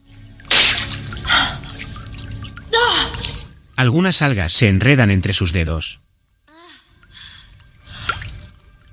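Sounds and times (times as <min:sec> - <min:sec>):
hands scooping water from a pool: 0:00.4 - 0:03.5
speech: 0:03.8 - 0:06.0.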